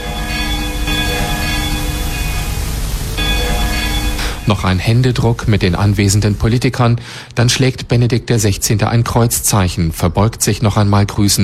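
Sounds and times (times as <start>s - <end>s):
church bells ringing from chapel: 0.0s - 6.8s
broadband noise: 0.0s - 9.0s
speech: 4.5s - 11.4s.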